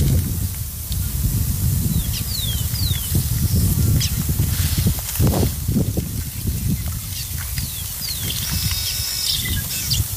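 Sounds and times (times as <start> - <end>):
steady desert wind rushing: 0.0 - 10.1
small birds chirping and whistling: 1.8 - 5.0, 5.8 - 10.1.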